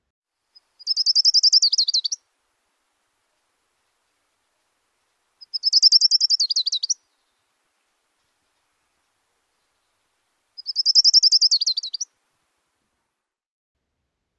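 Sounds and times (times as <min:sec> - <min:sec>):
orange-crowned warbler singing a high rapid trill: 0:00.8 - 0:02.2, 0:05.4 - 0:07.0, 0:10.6 - 0:12.1.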